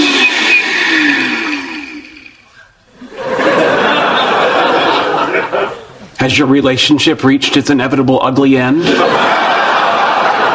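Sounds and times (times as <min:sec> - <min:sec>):
kitchen blender running: 0:00.0 - 0:02.5
laughter: 0:02.9 - 0:06.2, 0:08.7 - 0:10.5
speech: 0:06.2 - 0:09.6.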